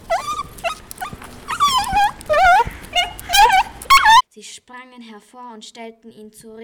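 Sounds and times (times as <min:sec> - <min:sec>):
dog whimpering: 0:00.0 - 0:04.2
speech: 0:04.5 - 0:06.6.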